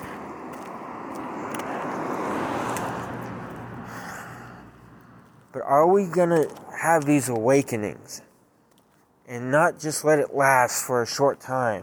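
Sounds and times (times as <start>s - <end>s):
car passing by: 0.0s - 5.4s
speech: 5.6s - 8.3s, 9.3s - 11.8s.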